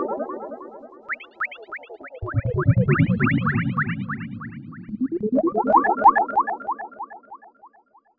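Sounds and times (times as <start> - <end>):
burbling synth arpeggios: 1.1 - 6.4.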